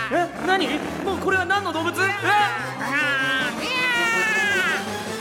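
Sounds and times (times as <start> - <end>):
speech: 0.1 - 4.4
person imitating a threatening cat meowing and yowling: 3.0 - 4.9.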